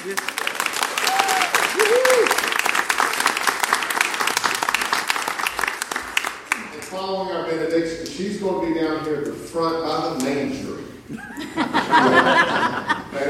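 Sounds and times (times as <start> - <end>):
speech: 0.0 - 0.4, 6.9 - 12.8
congregation applauding in a large room: 0.0 - 6.9
laughter: 11.1 - 13.2.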